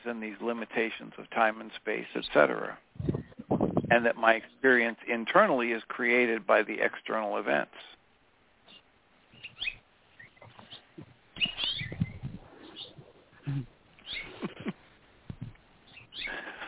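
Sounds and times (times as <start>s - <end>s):
speech: 0.0s - 3.2s, 3.9s - 8.0s, 13.5s - 13.7s
birds calling with overlapping twittering notes: 8.7s - 13.4s, 14.0s - 14.6s, 15.8s - 16.6s
starling chirping while feeding its chick: 8.7s - 13.4s, 14.0s - 14.6s, 15.8s - 16.4s.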